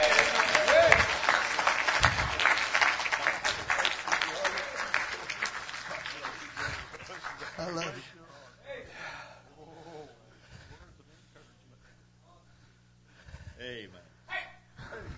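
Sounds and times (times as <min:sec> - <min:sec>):
church audience applauding: 0:00.0 - 0:08.0.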